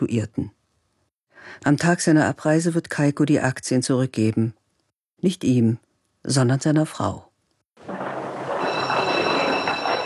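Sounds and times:
speech: 0.1 - 0.6, 1.4 - 4.6, 5.2 - 7.3
train rumbling at a station platform: 7.8 - 10.0.

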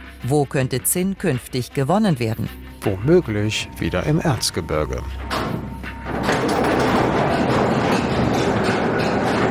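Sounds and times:
speech: 0.3 - 5.6
old mine railway locomotive pulling wagons: 2.9 - 9.5.

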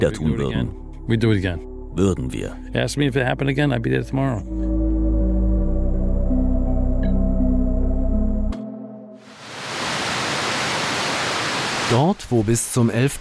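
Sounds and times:
speech: 0.0 - 4.8, 11.9 - 13.2
low musical drone: 0.0 - 9.2
water rushing: 9.2 - 13.2.

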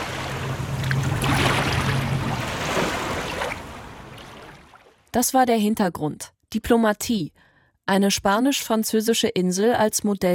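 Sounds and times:
low motor-like hum: 0.0 - 4.4
river flowing calmly toward the sea: 0.0 - 5.1
speech: 5.2 - 10.3.

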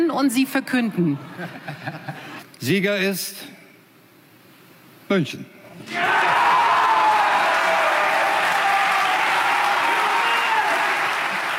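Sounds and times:
speech: 0.2 - 3.6, 5.1 - 6.3
large crowd cheering and applause with scattered whoops: 5.8 - 11.5.

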